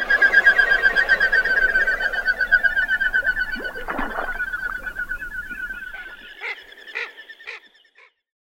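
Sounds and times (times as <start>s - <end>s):
whistling wing beats of a common goldeneye: 0.0s - 7.7s.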